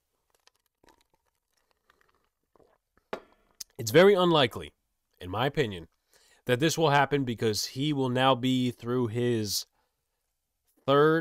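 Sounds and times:
slurping sip from a drink: 0:00.0 - 0:03.7
swallow: 0:00.2 - 0:03.1
speech: 0:03.8 - 0:09.7, 0:10.9 - 0:11.1.

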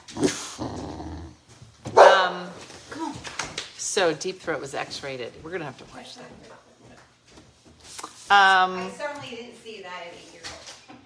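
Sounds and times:
dog growling: 0:00.0 - 0:01.4
dogs barking: 0:01.9 - 0:02.4
speech: 0:04.0 - 0:06.7, 0:08.3 - 0:10.4.

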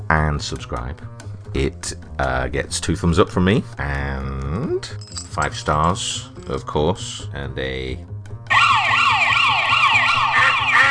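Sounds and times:
speech: 0:00.1 - 0:08.1
electronic siren wail from a police siren duck toy: 0:08.5 - 0:10.8.

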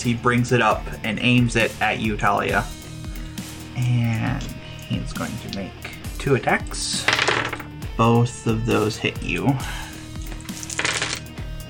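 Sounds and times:
speech: 0:00.0 - 0:02.8, 0:03.8 - 0:09.8
small plastic dice clattering across a tabletop: 0:07.0 - 0:07.7, 0:10.3 - 0:11.3.

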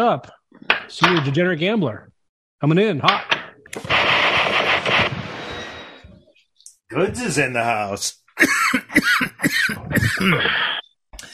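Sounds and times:
speech: 0:00.0 - 0:04.2, 0:06.9 - 0:11.3
person coughing after a bong hit: 0:08.4 - 0:10.8.

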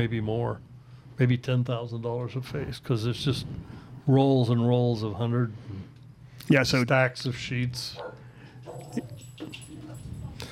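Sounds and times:
speech: 0:00.0 - 0:09.6
dog barking: 0:08.0 - 0:09.2.

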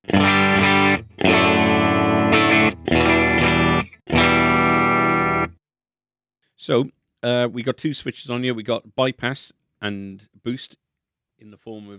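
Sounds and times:
electric guitar strumming chords through tube distortion pedal on clean sound: 0:00.0 - 0:05.6
speech: 0:06.6 - 0:10.8, 0:11.4 - 0:11.9.

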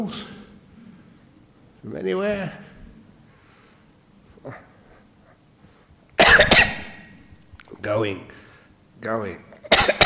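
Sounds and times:
speech: 0:00.0 - 0:00.4, 0:01.8 - 0:02.7, 0:04.4 - 0:04.7, 0:07.8 - 0:08.4, 0:09.0 - 0:09.8
person coughing: 0:06.2 - 0:07.1, 0:09.7 - 0:10.0.

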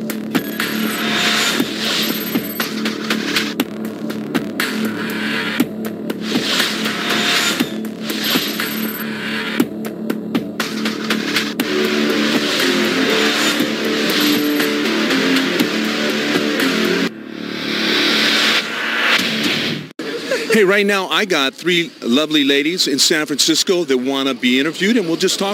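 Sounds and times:
car engine revving on a street in San Francisco: 0:00.5 - 0:09.7, 0:10.6 - 0:19.6
sharp metallic clicks: 0:08.2 - 0:09.0
laughter: 0:20.0 - 0:20.9
speech: 0:20.6 - 0:25.5.

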